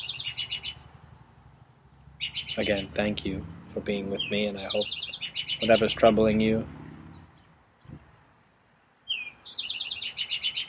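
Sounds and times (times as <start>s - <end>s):
spring bird singing bright high chirping notes: 0.0s - 1.0s, 1.8s - 8.2s, 8.8s - 10.6s
speech: 2.6s - 6.8s.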